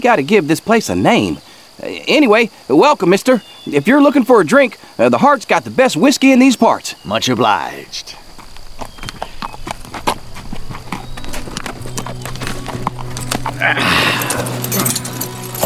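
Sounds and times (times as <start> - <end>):
speech: 0.0 - 8.2, 13.6 - 15.0
horse hooves clip-clopping at a walk: 7.6 - 15.6
low hum: 8.3 - 15.6.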